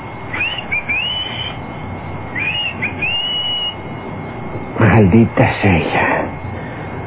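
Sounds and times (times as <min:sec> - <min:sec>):
person whistling to call someone: 0:00.4 - 0:01.6, 0:02.4 - 0:03.8
speech: 0:05.0 - 0:06.1.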